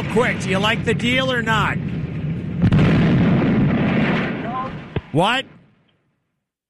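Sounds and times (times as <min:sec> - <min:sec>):
sustained roar of rumbling noise: 0:00.0 - 0:05.1
speech: 0:00.2 - 0:01.9, 0:05.2 - 0:05.4
gunshot: 0:01.9 - 0:05.4.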